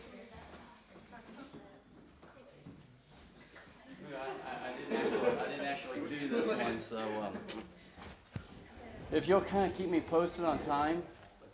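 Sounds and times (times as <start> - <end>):
fizzing bubbling hiss: 0.0 - 1.6
laughter: 3.8 - 7.5
speech: 9.1 - 11.2.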